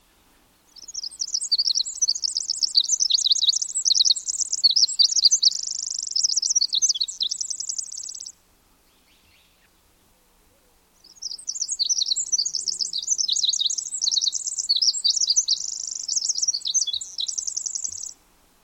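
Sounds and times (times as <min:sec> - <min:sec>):
Pacific wren singing: 0:00.7 - 0:08.3, 0:11.0 - 0:18.2.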